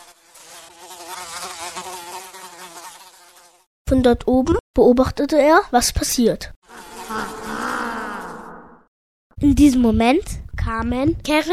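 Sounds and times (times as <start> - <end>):
housefly buzzing: 0.0 - 3.7, 6.6 - 8.9
speech: 3.9 - 7.4, 9.4 - 11.5.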